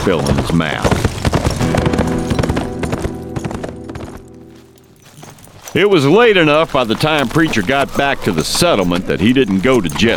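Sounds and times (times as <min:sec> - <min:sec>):
speech: 0:00.0 - 0:01.9, 0:05.7 - 0:10.1
ridden horse's hooves clip-clopping: 0:00.0 - 0:10.1
sustained tonal backdrop: 0:01.6 - 0:05.2.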